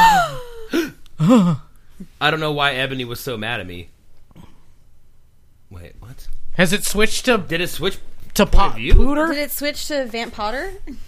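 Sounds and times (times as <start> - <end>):
people gasping theatrically: 0.0 - 1.7
speech: 1.3 - 3.9, 5.7 - 11.0.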